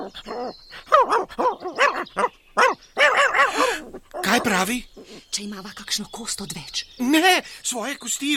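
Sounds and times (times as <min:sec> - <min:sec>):
dog whining: 0:00.0 - 0:05.2
speech: 0:00.1 - 0:02.4, 0:03.6 - 0:08.3
dog barking excitedly: 0:00.9 - 0:04.6.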